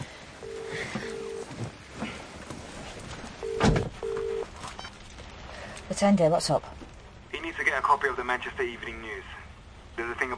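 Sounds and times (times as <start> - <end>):
low rustle: 0.0 - 10.3
double-pulse phone ring tone through the earpiece: 0.4 - 1.5, 3.4 - 4.5
speech: 6.0 - 6.8, 8.0 - 9.4, 10.0 - 10.3.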